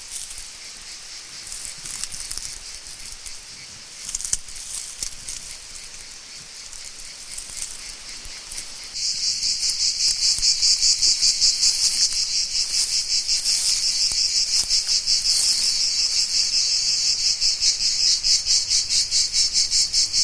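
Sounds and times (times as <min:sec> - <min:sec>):
cicadas chirping in southern France: 0:00.0 - 0:20.2.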